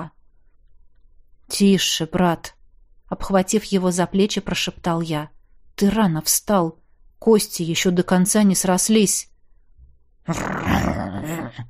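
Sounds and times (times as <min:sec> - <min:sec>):
speech: 0:01.5 - 0:09.3, 0:10.2 - 0:11.6
wolf growling: 0:10.3 - 0:11.5.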